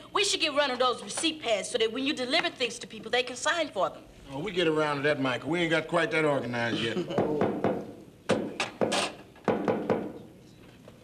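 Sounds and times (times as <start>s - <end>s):
speech: 0.2s - 7.5s
sharp hollow knocks on a door: 7.2s - 10.2s.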